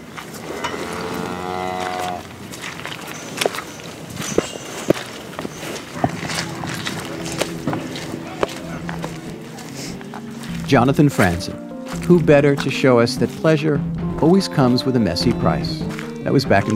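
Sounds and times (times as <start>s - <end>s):
herd of cattle lowing faintly: 0.0s - 10.7s
footsteps crunching and squelching: 0.0s - 16.7s
cow letting out a long drawn-out moo: 0.4s - 2.3s, 6.0s - 10.1s
speech: 10.7s - 16.7s.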